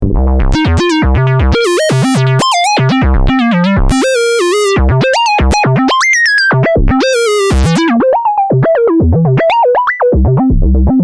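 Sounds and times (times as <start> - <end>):
Waldorf Pulse synthesizer: 0.1 - 11.0.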